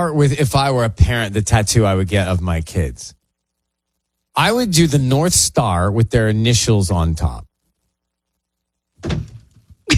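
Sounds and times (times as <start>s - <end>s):
speech: 0.0s - 3.2s, 4.4s - 7.5s, 9.0s - 9.3s
person falling out of a chair to the floor with a heavy thud and clatter: 9.0s - 9.8s.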